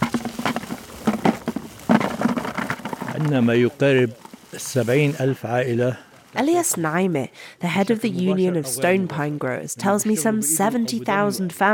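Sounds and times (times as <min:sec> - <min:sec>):
pine cones clattering into buckets: 0:00.0 - 0:03.6
speech: 0:03.2 - 0:11.7.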